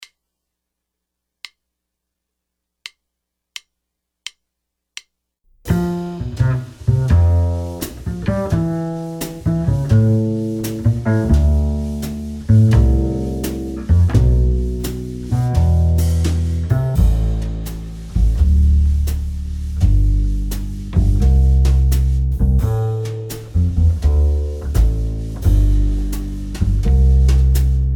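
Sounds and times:
backing track music: 5.7s - 27.9s.

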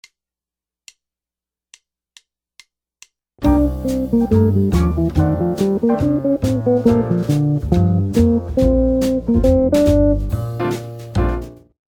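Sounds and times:
jazz guitar lick: 3.4s - 11.5s.

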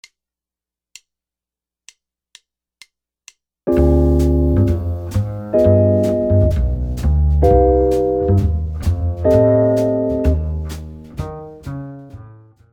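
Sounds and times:
jazz guitar comping: 3.7s - 12.7s.

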